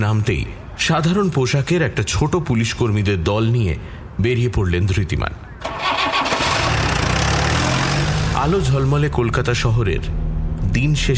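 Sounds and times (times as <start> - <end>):
speech: 0.0 - 5.4, 8.4 - 11.1
car engine starting and running on a busy city street in the evening: 5.6 - 11.1.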